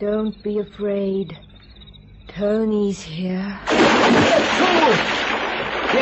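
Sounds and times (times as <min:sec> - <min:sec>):
speech: 0:00.0 - 0:01.5, 0:02.4 - 0:05.3
water splashing and churning in a swimming pool: 0:03.7 - 0:06.0.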